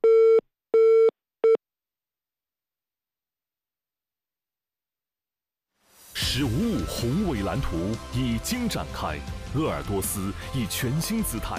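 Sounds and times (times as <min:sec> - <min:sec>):
telephone busy tone after a call is hung up: 0:00.0 - 0:01.6
speech: 0:06.4 - 0:11.5.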